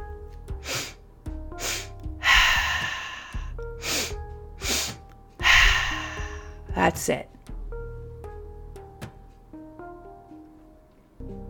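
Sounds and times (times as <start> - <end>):
soft low musical drone: 0.0 - 11.4
longer, louder breathy exhale through the mouth: 0.6 - 6.6
two quick sniffing nasal inhales in three-part breathing: 0.6 - 6.6
speech: 6.8 - 7.4.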